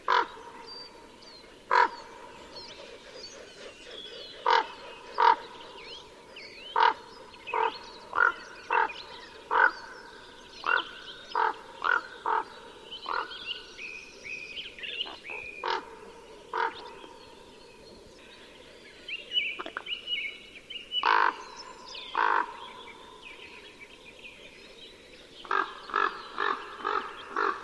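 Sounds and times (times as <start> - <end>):
common raven giving harsh hoarse calls: 0.0 - 0.4, 1.7 - 13.6, 14.9 - 17.1, 21.0 - 23.2, 25.4 - 27.6.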